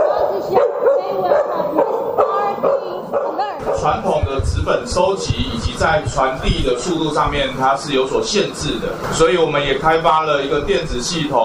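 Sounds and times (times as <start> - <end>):
search and rescue dog barking: 0.0 - 4.1
busy noise: 0.0 - 11.4
speech: 3.8 - 11.4.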